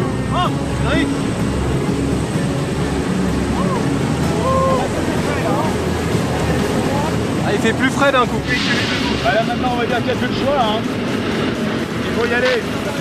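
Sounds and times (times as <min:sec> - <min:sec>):
airplane engine roar during climb before a skydive: 0:00.0 - 0:12.9
rushing air: 0:00.0 - 0:12.9
speech: 0:07.6 - 0:11.0, 0:12.2 - 0:12.9.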